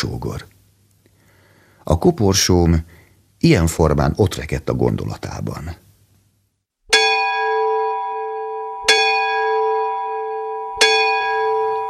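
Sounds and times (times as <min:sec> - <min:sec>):
speech: 0:00.0 - 0:00.5, 0:01.8 - 0:05.8
church bell tolling: 0:06.9 - 0:11.8.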